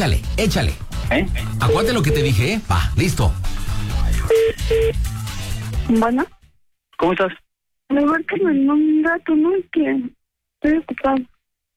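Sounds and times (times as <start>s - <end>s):
speech: 0.0s - 3.6s, 4.3s - 5.1s, 5.9s - 6.4s, 7.0s - 11.3s
touch-tone telephone dialing beeps: 1.6s - 2.4s.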